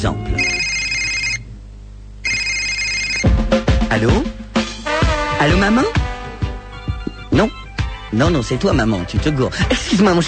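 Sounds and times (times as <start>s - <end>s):
speech: 0.0s - 0.5s, 3.9s - 4.4s, 5.4s - 6.0s, 7.4s - 10.2s
mobile phone ringing for an incoming call: 0.3s - 1.5s, 2.2s - 3.4s, 6.7s - 8.1s.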